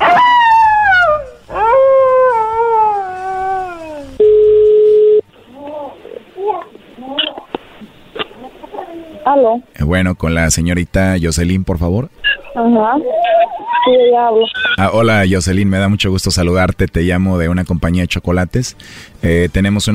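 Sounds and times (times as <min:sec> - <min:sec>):
wolf howling: 0:00.0 - 0:04.2
voices: 0:05.4 - 0:17.0
speech: 0:09.4 - 0:19.9.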